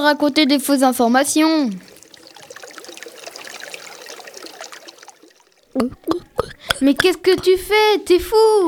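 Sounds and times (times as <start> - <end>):
speech: 0.0 - 1.9, 6.8 - 8.6
tap water running in a steady trickle: 0.3 - 7.6
person gulping while drinking: 5.8 - 7.6.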